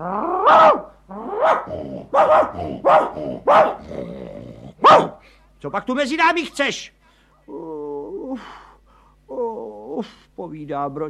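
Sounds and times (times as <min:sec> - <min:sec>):
speech: 0:00.0 - 0:00.9, 0:01.6 - 0:04.3, 0:04.9 - 0:07.7, 0:08.4 - 0:08.6, 0:10.0 - 0:11.0
village dogs on a meadow barking at another dog: 0:00.4 - 0:04.0, 0:04.8 - 0:05.2.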